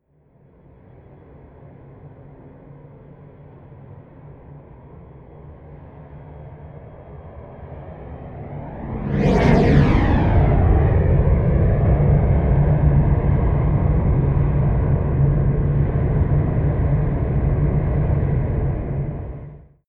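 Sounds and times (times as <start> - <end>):
private Cessna plane flying by left to right: 6.5 - 19.6.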